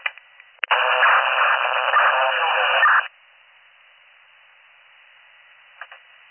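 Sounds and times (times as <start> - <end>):
loud harsh radio static: 0.6 - 3.1.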